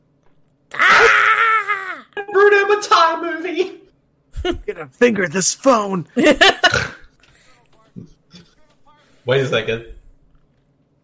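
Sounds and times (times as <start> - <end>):
woman screaming in a movie scene: 0.7 - 2.2
speech: 2.7 - 3.8, 4.4 - 6.8, 9.3 - 10.0.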